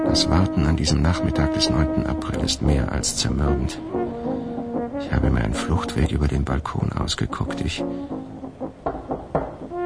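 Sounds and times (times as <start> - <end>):
speech: 0.1 - 4.1, 5.0 - 8.1
knocking: 8.8 - 9.8.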